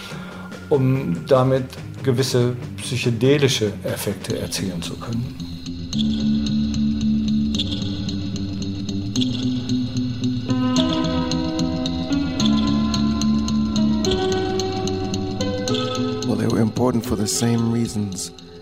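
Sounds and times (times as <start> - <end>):
speech: 0.7 - 6.2, 16.9 - 18.5
music with heavy reverb and echo: 5.0 - 16.4.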